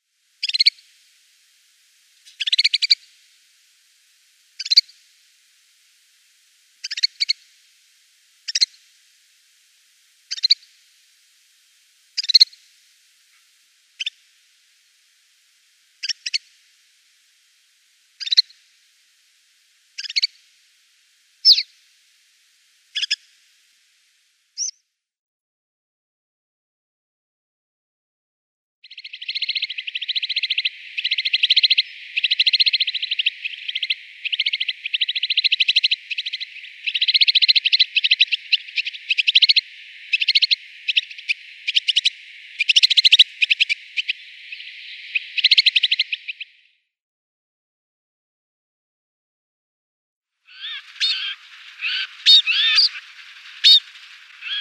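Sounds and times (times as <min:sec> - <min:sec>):
snowfinch calls: 0:00.0 - 0:01.0, 0:02.1 - 0:03.3, 0:04.5 - 0:05.1, 0:06.7 - 0:07.7, 0:08.4 - 0:08.9, 0:10.2 - 0:10.8, 0:12.1 - 0:12.7, 0:13.3 - 0:14.3, 0:15.9 - 0:16.8, 0:18.1 - 0:18.7, 0:19.9 - 0:20.5, 0:21.4 - 0:21.8, 0:22.8 - 0:23.3, 0:28.9 - 0:46.6, 0:50.5 - 0:54.5.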